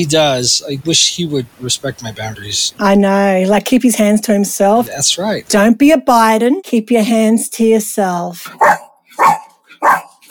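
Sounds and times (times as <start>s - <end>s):
speech: 0.0s - 10.0s
dog barking: 8.6s - 10.2s.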